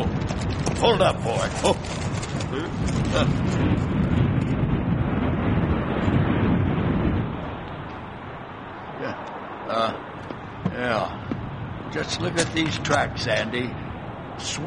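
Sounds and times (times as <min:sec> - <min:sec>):
brief rustles: 0:00.0 - 0:03.8
strong wind roaring with gusty buffeting: 0:00.0 - 0:14.6
speech: 0:00.8 - 0:03.9, 0:11.9 - 0:13.8, 0:14.4 - 0:14.6.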